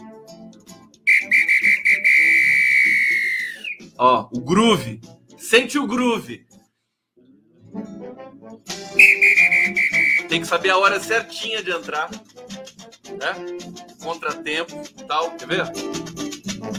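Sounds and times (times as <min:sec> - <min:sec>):
loud shrill whistle blast: 0:01.1 - 0:03.9, 0:09.0 - 0:10.4
speech: 0:04.0 - 0:06.5, 0:10.3 - 0:12.3, 0:13.2 - 0:16.0.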